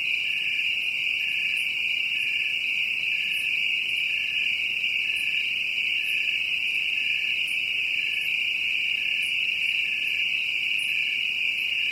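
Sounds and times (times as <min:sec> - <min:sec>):
cricket giving a steady continuous high trill: 0:00.0 - 0:11.9.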